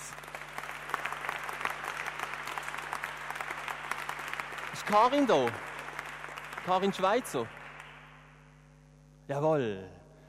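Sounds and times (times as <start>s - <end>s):
large audience applause: 0.0s - 8.2s
speech: 4.8s - 5.7s, 6.6s - 7.6s, 9.3s - 10.0s.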